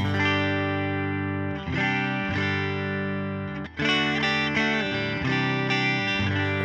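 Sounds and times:
electric guitar with bridge coil and neck single-coil strumming chords: 0.0 - 6.6.

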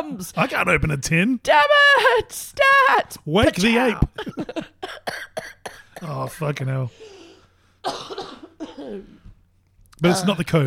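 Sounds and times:
speech: 0.0 - 7.2, 7.8 - 8.1, 8.8 - 9.2, 10.0 - 10.6
person coughing: 4.2 - 6.3, 7.2 - 9.2.

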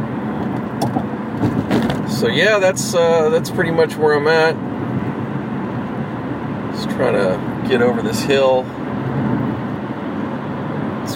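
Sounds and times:
road traffic rumble: 0.0 - 11.1
speech: 2.2 - 4.7, 7.0 - 8.8.

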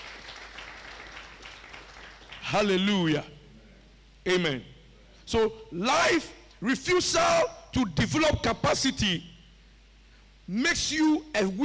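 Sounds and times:
congregation clapping at a church service: 0.0 - 2.9
speech: 2.5 - 3.4, 4.2 - 4.7, 5.3 - 9.3, 10.5 - 11.6.

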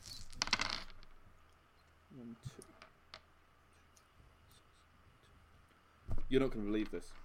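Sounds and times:
handful of dice clattering across a hard surface: 0.0 - 1.1
speech: 2.4 - 2.8, 6.3 - 7.2.

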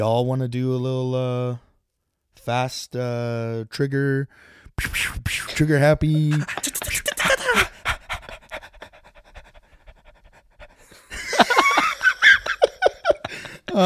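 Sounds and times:
speech: 0.0 - 1.7, 2.4 - 7.7
rapid heavy panting into a microphone: 4.3 - 13.8
breathy laughing noises: 6.2 - 13.8.

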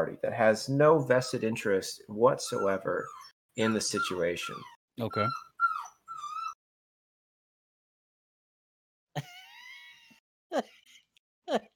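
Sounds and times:
speech: 0.0 - 5.5, 11.5 - 11.7
dog whining: 2.3 - 6.6.

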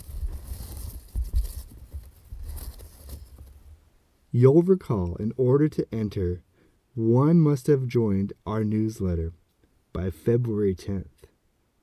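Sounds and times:
paper strips rustling inside a hat: 0.0 - 3.6
speech: 4.4 - 9.4, 10.0 - 11.3.

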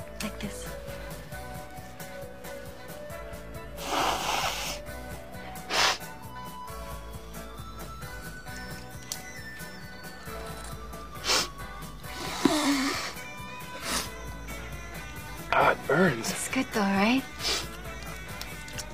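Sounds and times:
quick hard snorts through the nose: 3.7 - 6.2, 11.1 - 14.2, 17.4 - 17.7
speech: 16.0 - 17.3.

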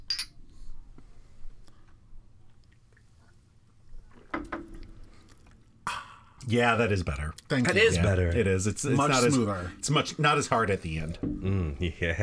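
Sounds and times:
glasses clinking in a toast: 0.0 - 0.4
speech: 6.5 - 12.2.

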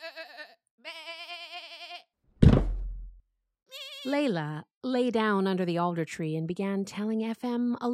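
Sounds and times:
young goats bleating: 0.0 - 2.0, 3.7 - 4.2
heavy hollow thud of goats butting by a teeter-totter: 2.4 - 3.2
speech: 4.0 - 7.9.

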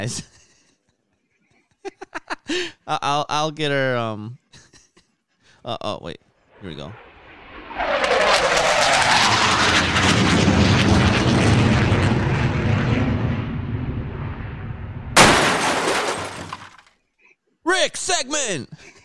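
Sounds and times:
speech: 0.0 - 0.3, 2.5 - 4.4, 5.6 - 7.1, 17.7 - 19.0
abrupt crash burst: 6.5 - 16.8
airplane engine roar of a plane in trouble with a fuel issue: 6.6 - 15.2.

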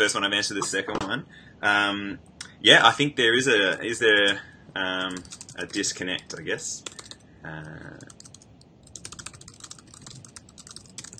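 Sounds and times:
speech: 0.0 - 8.2
fingers typing on a computer keyboard: 5.0 - 7.2, 8.0 - 11.1.

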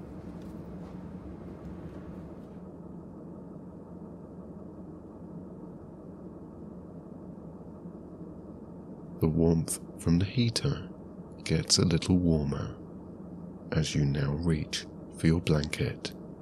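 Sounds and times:
idling train low engine rumble at a station: 0.0 - 2.7
speech: 9.2 - 10.9, 11.5 - 12.8, 13.7 - 16.2.

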